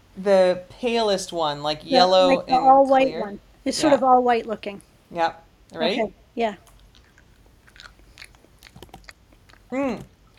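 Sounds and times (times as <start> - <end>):
speech: 0.2 - 6.7, 9.7 - 10.1
quiet mouth sounds: 1.8 - 3.2, 7.8 - 10.3
soft talking: 1.8 - 4.8, 5.7 - 6.1
biting and chewing vanilla ice cream flavoured candy: 6.7 - 10.3.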